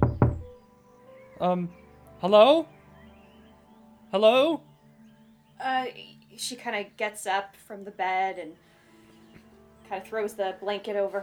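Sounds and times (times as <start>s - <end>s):
knocking on a wooden door: 0.0s - 0.6s
speech: 1.4s - 2.8s, 4.1s - 4.7s, 5.6s - 8.7s, 9.9s - 11.2s.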